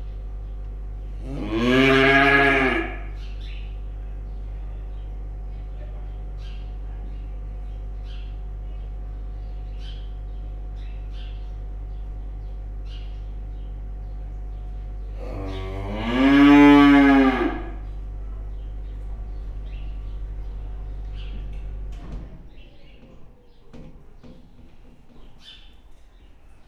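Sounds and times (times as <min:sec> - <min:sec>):
5-month-old aurochs bull in a cold room in Hortobágy National Park: 0:01.2 - 0:03.2, 0:15.0 - 0:20.1.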